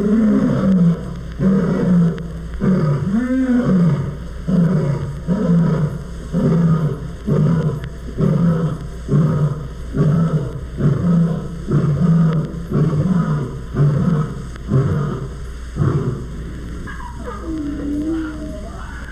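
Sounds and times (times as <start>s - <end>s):
deep rhythmic lion roars: 0.0s - 19.1s
thin high-pitched wail: 16.9s - 19.1s.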